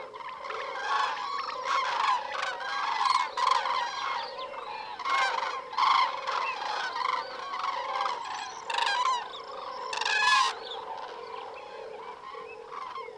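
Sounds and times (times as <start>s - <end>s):
large migrating bird flocks honking: 0.0s - 13.1s.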